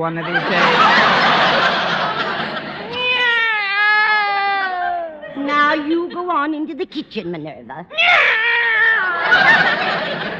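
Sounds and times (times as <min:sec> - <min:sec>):
speech: 0:00.0 - 0:01.4, 0:05.6 - 0:08.4, 0:09.2 - 0:10.3
laughter: 0:00.0 - 0:03.4, 0:09.0 - 0:10.3
female cat meowing long and drawn-out: 0:02.9 - 0:05.2, 0:07.9 - 0:09.3.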